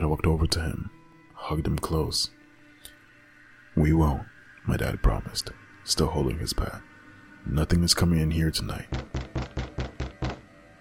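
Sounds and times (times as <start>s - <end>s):
speech: 0.2s - 2.4s, 3.8s - 9.6s
heavy knocking on a door: 8.9s - 10.5s.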